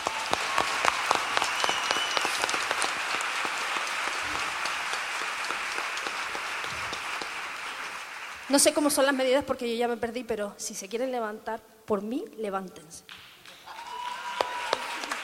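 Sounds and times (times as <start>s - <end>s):
audience applause at a live show: 0.0s - 8.8s, 13.5s - 15.2s
speech: 8.5s - 13.2s.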